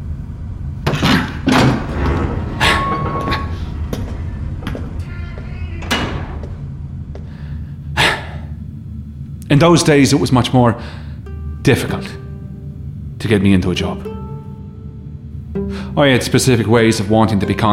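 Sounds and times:
steady low rumble: 0.0 - 17.7
door sliding open and shut: 0.8 - 7.1
scraping knocks and clunks: 0.8 - 7.3
speech: 9.6 - 12.2, 13.2 - 14.1, 16.0 - 17.7.

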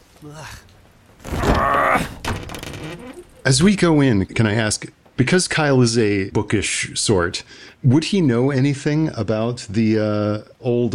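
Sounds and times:
speech: 0.2 - 2.1, 2.8 - 10.9
swollen peeling wooden door forced open with a shoulder, creaking: 1.1 - 4.1
wooden door ending in a dull thunk: 1.3 - 3.4.

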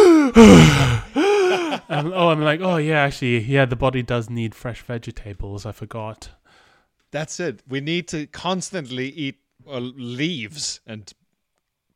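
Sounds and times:
person imitating a gasp of the body catching its breath: 0.0 - 1.8
speech: 0.4 - 0.9, 1.9 - 6.4, 7.1 - 11.2.

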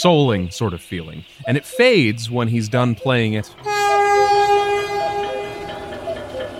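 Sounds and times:
speech: 0.0 - 3.8
train rumbling on tracks: 3.0 - 6.5
train multi-tone horn: 3.6 - 6.5.

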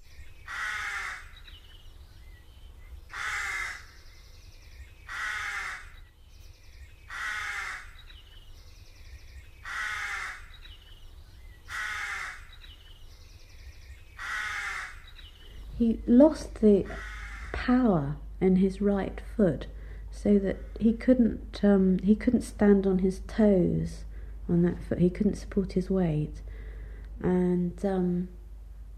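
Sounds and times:
constant low hum: 0.0 - 28.9
crows cawing: 0.4 - 1.5, 3.1 - 4.0, 5.0 - 6.0, 7.0 - 8.1, 9.6 - 10.7, 11.6 - 12.7, 14.2 - 15.2, 16.9 - 17.6
speech: 15.8 - 26.5, 27.2 - 28.4.

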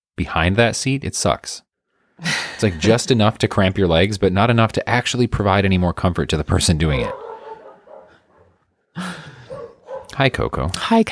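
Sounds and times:
speech: 0.2 - 7.3, 9.0 - 9.2, 10.1 - 11.0
puppy barking: 7.0 - 8.6, 9.5 - 10.2.

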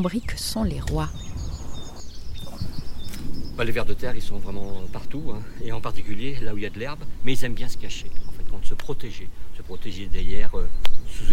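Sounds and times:
speech: 0.0 - 1.3, 3.6 - 11.3
birds singing in spring in a vegetable garden: 0.0 - 11.3
low rumbling ground noise: 0.3 - 10.6.

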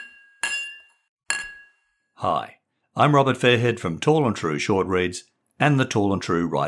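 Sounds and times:
glasses clinking in a toast: 0.0 - 1.8
speech: 2.2 - 6.6.

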